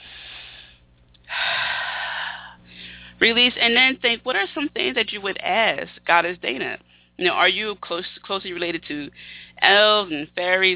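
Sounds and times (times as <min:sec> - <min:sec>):
deep breath: 0:00.0 - 0:03.2
speech: 0:03.2 - 0:10.7.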